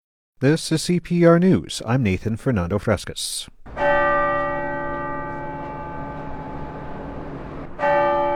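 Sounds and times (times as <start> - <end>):
speech: 0.4 - 4.2
large bell of a cathedral basilica in Denver Colorado ringing: 3.6 - 8.3.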